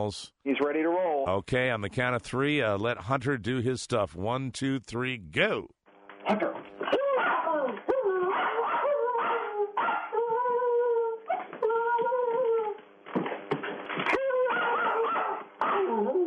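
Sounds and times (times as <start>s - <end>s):
speech: 0.0s - 6.7s
Jack Russell terrier whining howls: 6.9s - 12.8s, 14.1s - 16.2s
small Jack Russell terrier barking and yelping: 7.0s - 10.2s, 14.4s - 16.2s.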